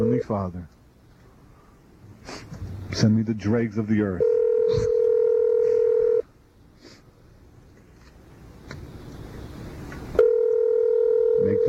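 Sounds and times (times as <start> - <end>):
speech: 0.2 - 0.8, 2.2 - 5.0
telephone touch-tone dialing tone: 4.2 - 6.2, 10.2 - 11.6
quiet hissy telephone line: 4.2 - 7.0, 9.0 - 11.6.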